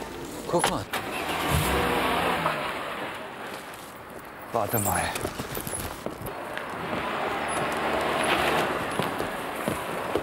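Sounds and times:
speech: 0.5s - 1.7s, 4.5s - 5.6s
car engine accelerating: 0.9s - 3.7s, 6.3s - 10.2s.

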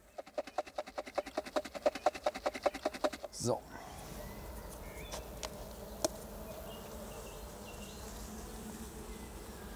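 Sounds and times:
honeybees buzzing in a jar: 0.0s - 9.7s
speech: 3.4s - 3.7s.

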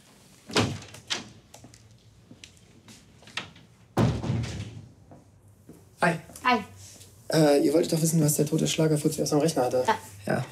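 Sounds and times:
heavy door shutting thud: 0.5s - 1.3s, 4.0s - 4.9s
speech: 7.3s - 10.4s.

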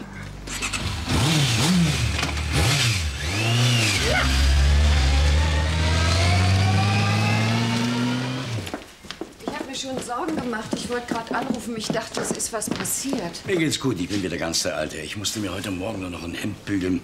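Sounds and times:
car engine starting and driving off: 0.4s - 8.7s
speech: 10.5s - 17.0s.

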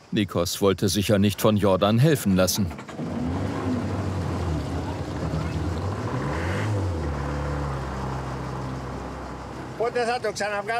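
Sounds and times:
speech: 0.1s - 3.4s, 9.9s - 10.7s
boat engine at Aegina sputtering and failing to start: 2.4s - 10.7s.

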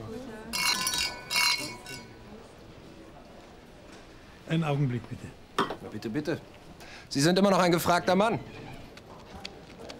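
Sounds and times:
glasses clinking in a toast: 0.5s - 2.2s
speech: 4.5s - 8.6s.

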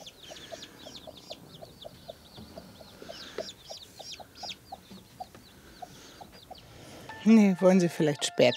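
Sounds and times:
hen clucking among her chicks in an improvised rearing shed: 0.0s - 6.8s
chicks peeping in an improvised rearing shed: 0.0s - 7.5s
speech: 7.2s - 8.5s.

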